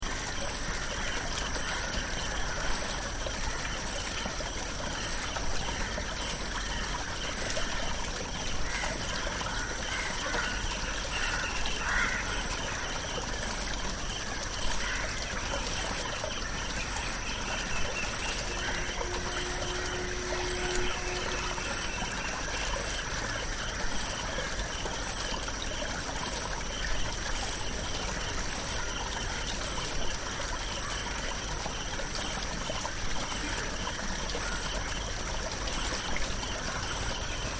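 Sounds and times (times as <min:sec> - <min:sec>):
backwater insects: 0:00.0 - 0:37.5
backwater water: 0:00.0 - 0:37.5.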